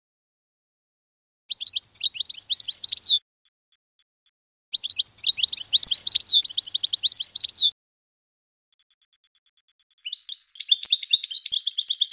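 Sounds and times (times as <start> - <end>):
canary song with rapid high trilled notes: 1.5 - 3.2, 4.7 - 7.7, 8.7 - 12.1.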